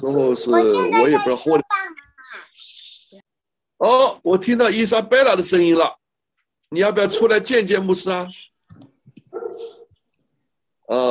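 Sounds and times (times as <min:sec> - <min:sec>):
speech: 0:00.0 - 0:01.7, 0:03.8 - 0:06.0, 0:06.7 - 0:08.9, 0:10.9 - 0:11.1
dog barking: 0:07.0 - 0:07.5, 0:09.3 - 0:10.0.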